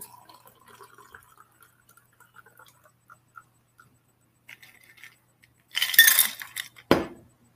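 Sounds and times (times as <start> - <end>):
drink poured into an old-fashioned glass: 0.0 - 3.5
faint glassy clinks: 5.8 - 6.6
something set down with a dull knock: 6.9 - 7.2.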